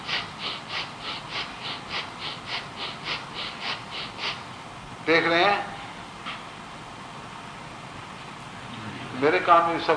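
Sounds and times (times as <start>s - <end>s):
forceful rhythmic breathing during devotional chanting: 0.0s - 4.5s
speech: 5.1s - 5.7s, 9.2s - 9.9s.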